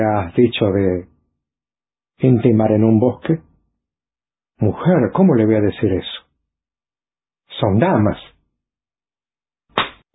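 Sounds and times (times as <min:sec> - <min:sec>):
speech: 0:00.0 - 0:01.1, 0:02.2 - 0:03.5, 0:04.6 - 0:06.2, 0:07.6 - 0:08.3
loud slap across the face: 0:09.7 - 0:10.0.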